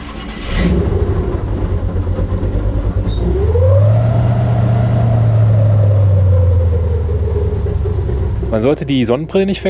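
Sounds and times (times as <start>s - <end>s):
airboat with a huge propeller on a big engine roaring: 0.1s - 9.6s
speech: 8.6s - 9.6s.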